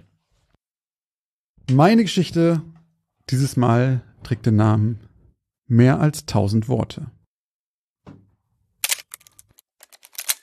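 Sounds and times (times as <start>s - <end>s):
speech: 1.7s - 2.7s, 3.3s - 5.1s, 5.7s - 7.2s
film camera advance lever ratcheting as it winds: 8.8s - 10.4s.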